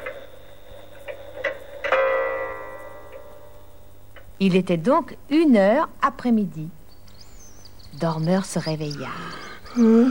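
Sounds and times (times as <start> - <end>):
clock striking one o'clock chime: 0.0 - 4.0
speech: 4.4 - 6.8, 8.0 - 10.1.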